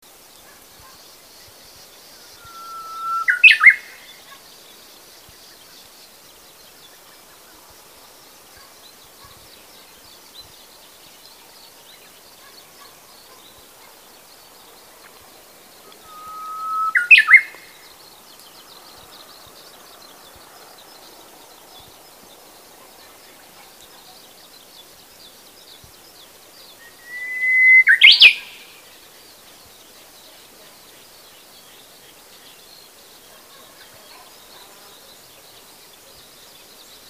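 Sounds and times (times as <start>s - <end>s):
birds: 0.0s - 37.0s
Japanese bush warbler singing: 0.1s - 37.0s.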